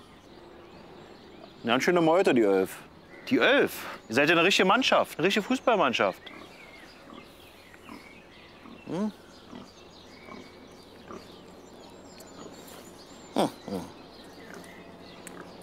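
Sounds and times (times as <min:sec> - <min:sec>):
speech: 0:01.6 - 0:06.5, 0:08.9 - 0:09.2
litter of piglets grunting and oinking: 0:06.2 - 0:11.5, 0:12.3 - 0:15.6.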